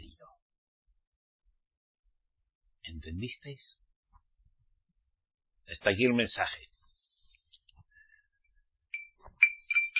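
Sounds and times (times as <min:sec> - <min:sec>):
speech: 0:02.9 - 0:03.8, 0:05.7 - 0:06.7
small handbell ringing: 0:08.9 - 0:09.9.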